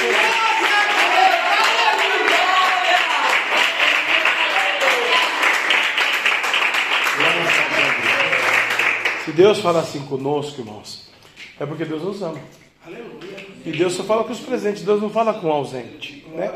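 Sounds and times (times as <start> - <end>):
voices and cheers within the crowd: 0.0 - 9.1
audience at a night worship service applauding: 0.0 - 9.6
speech: 9.3 - 16.5.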